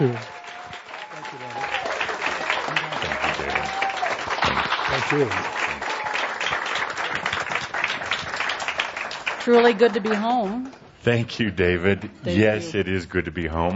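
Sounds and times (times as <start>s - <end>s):
speech: 0.0s - 0.4s, 4.9s - 5.6s, 9.5s - 13.7s
audience applause: 0.0s - 10.7s.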